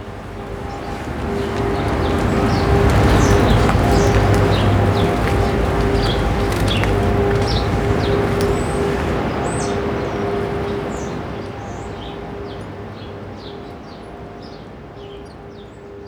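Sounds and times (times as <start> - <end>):
steady outdoor rumble: 0.0 - 11.1
birds chattering: 0.5 - 16.0.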